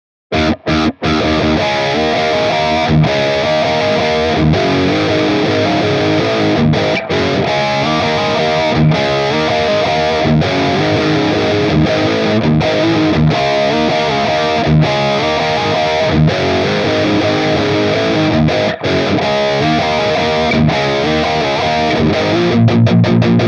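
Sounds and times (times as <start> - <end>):
dirty electric guitar through amplifier: 0.3 - 23.4.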